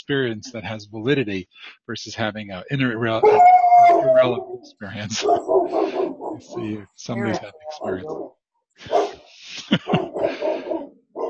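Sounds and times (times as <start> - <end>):
speech: 0.1 - 9.1, 9.7 - 10.4
laughter: 0.3 - 3.2, 4.2 - 8.1, 8.8 - 10.7
whiny dog notes: 3.2 - 8.3
several dogs barking with yips and woofs: 3.2 - 9.2, 9.8 - 11.2.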